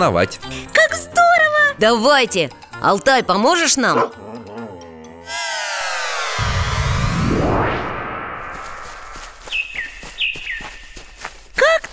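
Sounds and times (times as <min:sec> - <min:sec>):
speech: 0:00.0 - 0:00.8, 0:01.8 - 0:04.3
sweeping musical whoosh: 0:05.3 - 0:09.2
birds chirping in a sunny summer forest: 0:08.9 - 0:11.9.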